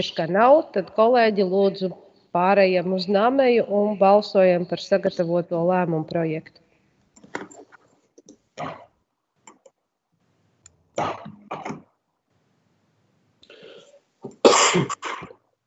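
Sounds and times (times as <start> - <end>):
speech: 0.0 - 6.6, 7.3 - 7.6, 14.8 - 15.2
person coughing sharply during a council meeting vote: 11.0 - 11.9, 14.4 - 15.4.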